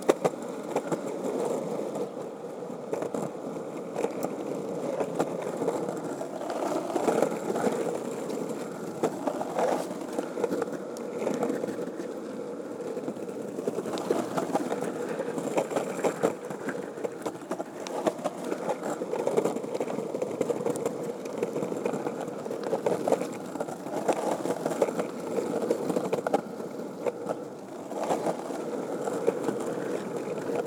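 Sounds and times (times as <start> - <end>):
skateboard rolling on roads and sidewalks: 0.0 - 30.6.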